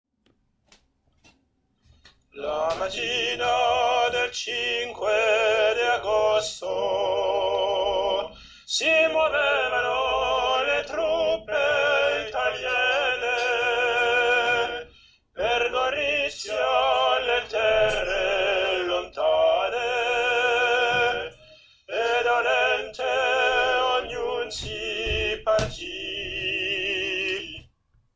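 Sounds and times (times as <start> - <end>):
soprano singing: 2.4 - 27.7.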